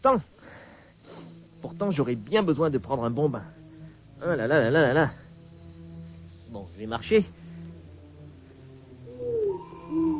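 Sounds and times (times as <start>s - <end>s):
speech: 0.0s - 0.5s, 1.6s - 3.6s, 4.2s - 5.2s, 6.5s - 7.4s
steady high chirring of crickets: 0.0s - 10.1s
low drawn-out owl hoots at night: 9.0s - 10.1s.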